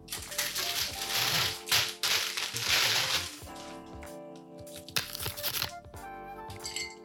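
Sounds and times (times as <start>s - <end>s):
celery stalk crackling and snapping as it is handled: 0.0s - 3.7s, 4.8s - 5.8s
celery clinking and tapping against a Bloody Mary glass: 6.6s - 7.0s.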